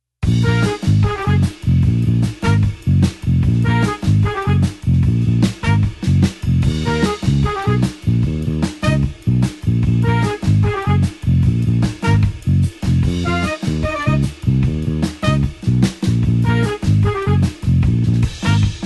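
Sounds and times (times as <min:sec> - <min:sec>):
blues horns playing an eight-beat in B flat: 0:00.2 - 0:18.8.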